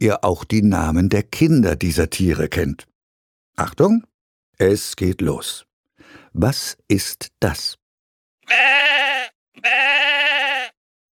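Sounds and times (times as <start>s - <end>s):
speech: 0.0s - 2.9s, 3.6s - 7.8s, 8.5s - 10.2s
sheep bleating: 8.4s - 10.8s.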